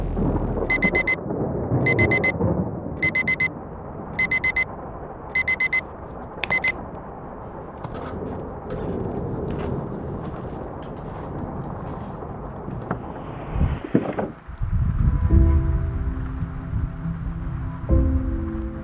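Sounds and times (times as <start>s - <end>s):
unseasonal steady rain: 0.2s - 18.8s
scattered raindrops pattering: 0.9s - 13.2s.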